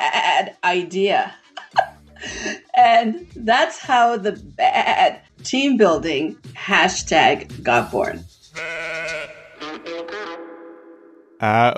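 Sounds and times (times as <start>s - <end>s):
speech: 0.1s - 1.4s, 2.2s - 8.8s, 11.4s - 11.7s
sheep bleating: 8.6s - 10.0s.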